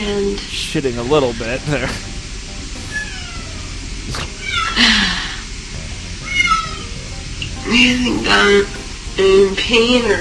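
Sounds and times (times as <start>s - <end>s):
speech: 0.0s - 2.1s, 4.1s - 5.1s, 7.7s - 10.1s
low hum: 0.0s - 10.1s
cat meowing: 2.9s - 4.9s, 6.2s - 7.1s.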